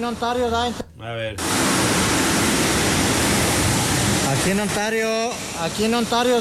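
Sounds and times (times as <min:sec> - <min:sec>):
speech: 0:00.0 - 0:02.1, 0:04.3 - 0:06.4
heavy rain drumming on a sheet metal roof: 0:01.4 - 0:05.8.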